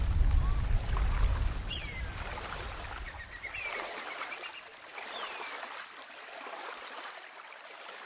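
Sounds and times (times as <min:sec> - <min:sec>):
small boat engine-like rumble: 0:00.0 - 0:03.6
water splashing: 0:00.0 - 0:08.0.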